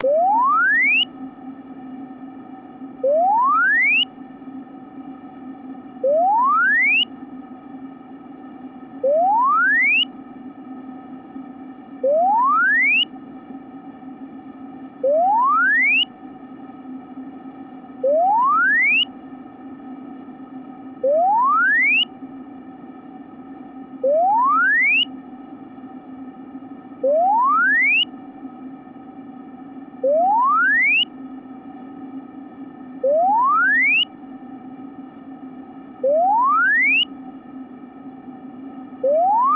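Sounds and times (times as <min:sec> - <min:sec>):
frequency sweep tone from 500 Hz to 3 kHz: 0:00.0 - 0:01.2, 0:03.0 - 0:04.2, 0:06.0 - 0:07.2, 0:09.0 - 0:10.2, 0:12.0 - 0:13.2, 0:15.0 - 0:16.2, 0:18.0 - 0:19.2, 0:21.0 - 0:22.1, 0:24.0 - 0:25.2, 0:27.0 - 0:28.1, 0:30.0 - 0:31.2, 0:33.0 - 0:34.2, 0:36.0 - 0:37.2, 0:39.0 - 0:39.5.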